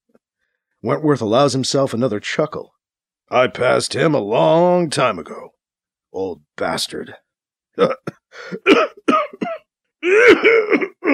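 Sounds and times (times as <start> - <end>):
speech: 0.8 - 7.2, 7.8 - 9.2, 10.0 - 11.1
man's harsh racking cough with phlegmy rasps: 7.8 - 11.1.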